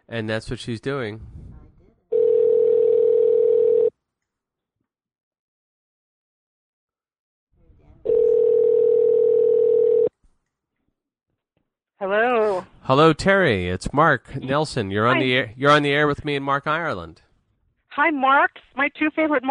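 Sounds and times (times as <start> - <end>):
speech: 0.1 - 1.4, 12.0 - 17.2, 18.0 - 19.4
phone line ringing while dialing into a conference call: 2.1 - 3.9, 8.1 - 10.1.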